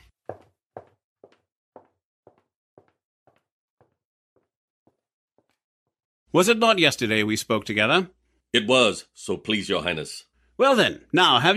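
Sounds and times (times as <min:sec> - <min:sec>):
firm footsteps on a hard floor: 0:00.0 - 0:05.6
speech: 0:06.3 - 0:11.5.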